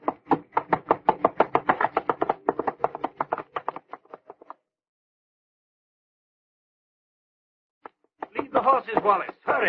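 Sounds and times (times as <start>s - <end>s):
galloping horse hoofbeats: 0.0s - 4.6s, 8.2s - 9.6s
person speaking: 8.2s - 9.6s.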